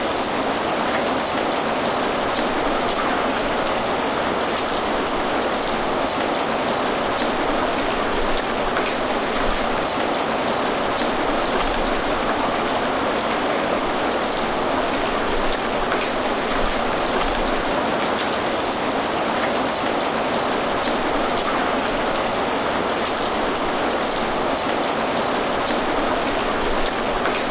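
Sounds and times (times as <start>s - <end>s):
rain: 0.0s - 27.4s.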